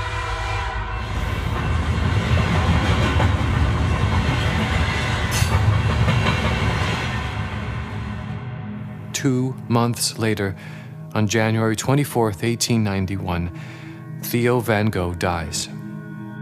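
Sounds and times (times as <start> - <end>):
brief horn-like train tone: 0.0 - 1.8
train rumbling and clattering along the rails: 1.2 - 7.5
speech: 9.2 - 15.8.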